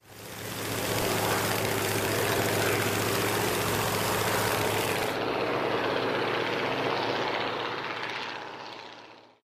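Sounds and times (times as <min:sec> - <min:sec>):
airplane: 0:00.0 - 0:09.4.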